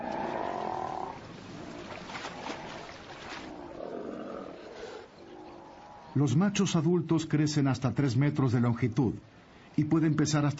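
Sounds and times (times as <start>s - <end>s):
male South American sea lion roaring in deep rough croaking bellows: 0.0s - 1.2s, 3.5s - 6.1s
speech: 6.2s - 10.5s.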